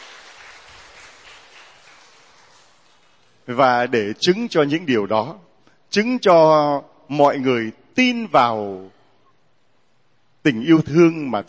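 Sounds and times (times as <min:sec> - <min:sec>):
crowd applauding the children: 0:00.0 - 0:03.5
speech: 0:03.5 - 0:09.0, 0:10.4 - 0:11.4.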